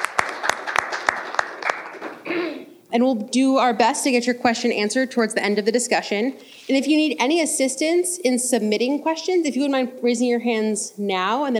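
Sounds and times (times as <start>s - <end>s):
moderately sized audience applauding: 0.0s - 2.3s
speech: 2.9s - 11.5s.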